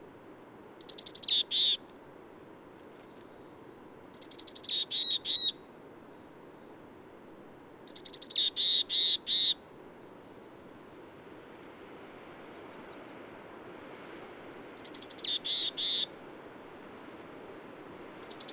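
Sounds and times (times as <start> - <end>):
bird song: 0.8 - 6.9, 7.9 - 11.4, 14.8 - 16.9, 18.2 - 18.5.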